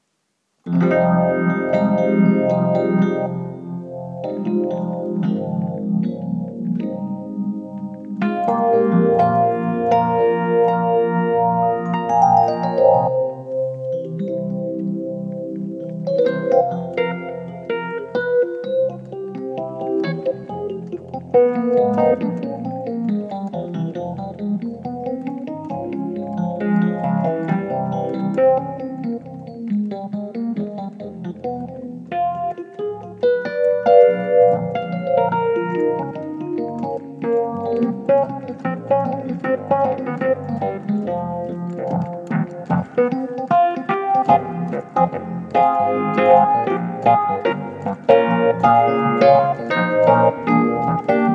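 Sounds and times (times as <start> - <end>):
Rhodes electric piano: 0.0 - 51.3.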